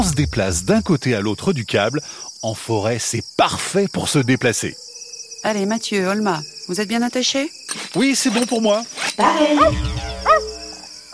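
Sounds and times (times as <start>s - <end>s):
steady hum and low rumble: 0.0s - 1.1s
speech: 0.0s - 10.5s
small dog yapping: 9.1s - 10.5s.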